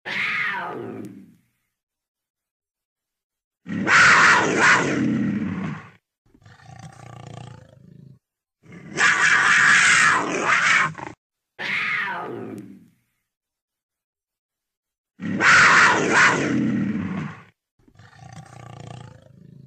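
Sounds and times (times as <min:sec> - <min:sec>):
puma: 0:00.0 - 0:01.7, 0:03.6 - 0:13.2, 0:15.2 - 0:19.6.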